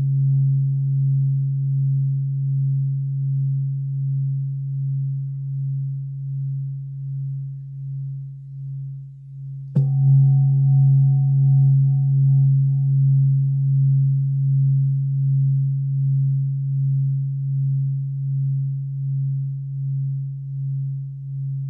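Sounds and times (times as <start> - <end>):
singing bowl humming: 0.0 - 21.6
soft singing bowl strike: 9.7 - 13.3.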